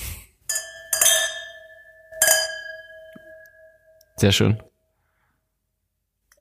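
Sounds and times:
wine glasses clinking together in a toast: 0.5s - 4.2s
speech: 4.2s - 4.7s.

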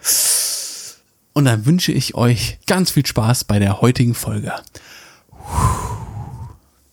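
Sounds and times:
speech: 1.4s - 5.0s
long deep inhalation: 4.8s - 6.7s.

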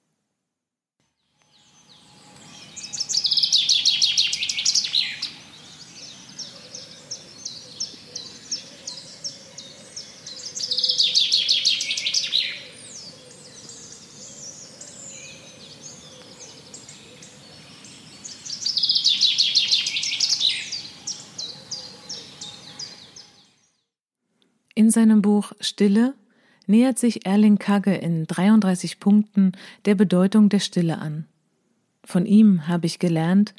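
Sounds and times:
bird singing rapid high chirps and trills: 1.1s - 24.0s
speech: 25.0s - 31.3s, 32.1s - 33.5s.

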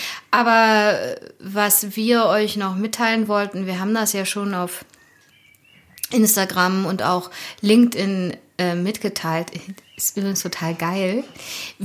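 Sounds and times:
speech: 0.3s - 5.0s, 6.1s - 11.8s
birds chirping softly in Zehlendorf: 2.4s - 11.8s.

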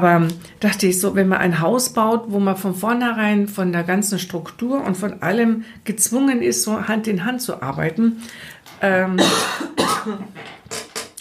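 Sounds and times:
speech: 0.0s - 10.8s
breathy pauses between coughs: 5.6s - 5.8s, 8.2s - 8.7s
harsh raspy coughs: 9.2s - 11.1s.

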